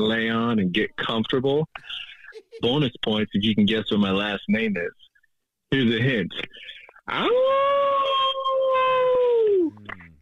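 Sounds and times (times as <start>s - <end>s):
speech: 0.0s - 5.0s, 5.7s - 8.7s
person imitating a wolf howl: 7.2s - 9.8s.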